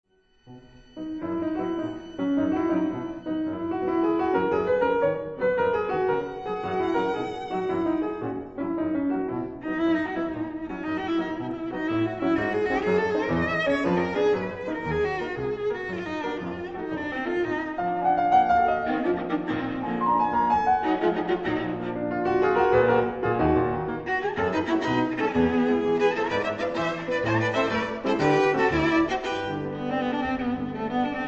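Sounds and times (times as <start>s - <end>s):
forlane on piano: 0.5s - 31.2s.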